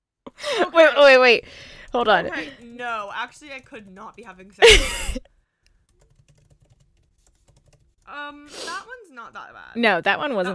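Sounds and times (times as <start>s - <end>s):
speech: 0.6s - 5.3s, 8.1s - 10.5s
computer keyboard keys clicking while typing: 1.8s - 4.6s, 5.7s - 8.1s.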